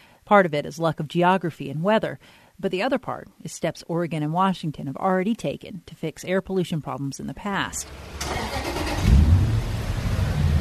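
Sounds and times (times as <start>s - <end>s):
speech: 0.3s - 8.5s
cars and trucks rumbling through vehicle inspection station bays in Medford, Oregon: 7.8s - 10.5s.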